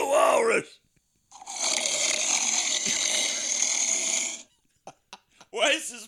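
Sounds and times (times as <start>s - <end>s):
speech: 0.6s - 0.8s, 5.6s - 6.0s
person imitating heavy mechanical respirator breathing: 1.4s - 4.5s.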